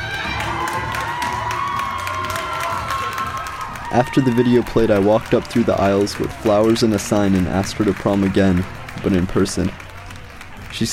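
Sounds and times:
whoops and shrieks: 0.0 - 4.7
large crowd of young voices cheering and yelling at school: 0.0 - 10.9
speech: 3.9 - 9.8, 10.8 - 10.9.

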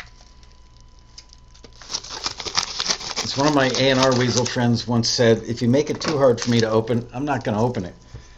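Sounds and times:
rustling plastic packaging: 0.0 - 7.9
scissors cutting stiff plastic packaging: 1.2 - 4.7, 6.0 - 6.8
speech: 3.4 - 8.1.

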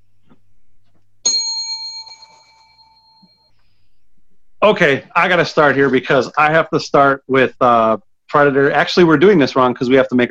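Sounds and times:
single bright bell struck: 1.2 - 3.5
speech: 4.6 - 10.2.

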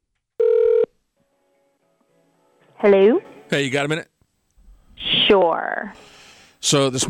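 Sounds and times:
single steady telephone tone: 0.4 - 0.9
speech: 2.8 - 4.1, 5.0 - 7.0.

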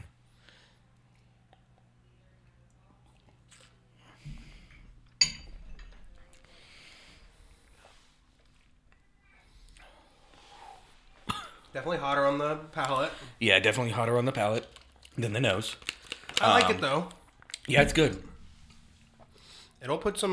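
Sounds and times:
low steady hum: 0.0 - 20.2
quiet sipping of Old Forester: 0.1 - 11.8, 12.6 - 19.8
glasses clinking in a toast: 4.7 - 6.8, 17.7 - 19.7
speech: 11.8 - 18.3, 19.8 - 20.3.

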